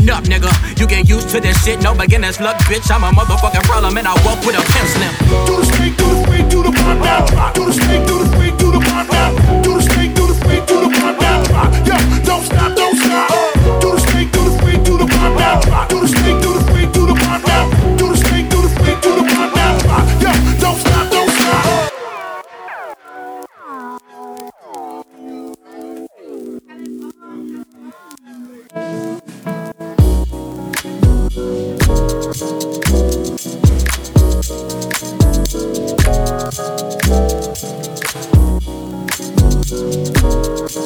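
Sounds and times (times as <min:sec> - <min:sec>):
heavy steady beat with punchy bass kicks: 0:00.0 - 0:10.6, 0:13.6 - 0:19.0, 0:30.0 - 0:30.3, 0:31.0 - 0:32.4, 0:33.6 - 0:34.5, 0:35.2 - 0:36.4, 0:38.4 - 0:38.7, 0:39.4 - 0:40.4
hip-hop instrumental on a radio broadcast: 0:00.0 - 0:40.8
speech: 0:00.1 - 0:09.5.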